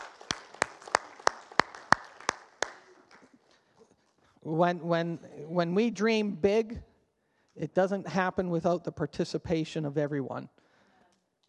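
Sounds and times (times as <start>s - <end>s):
audience applauding: 0.0s - 3.5s
speech: 4.4s - 6.9s, 7.6s - 10.6s.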